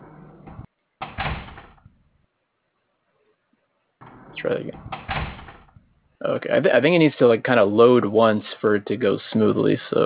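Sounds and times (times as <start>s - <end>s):
door creaking open: 0.0s - 2.0s, 4.0s - 6.0s
door clattering swing and thud: 0.4s - 2.0s, 4.0s - 5.9s
speech: 4.4s - 5.1s, 6.3s - 10.0s.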